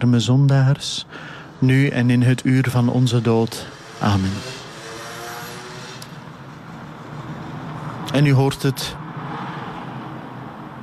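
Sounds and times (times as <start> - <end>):
speech: 0.0 - 4.6, 8.1 - 9.0
city traffic rumbling: 0.0 - 10.8
engine humming: 0.0 - 10.8.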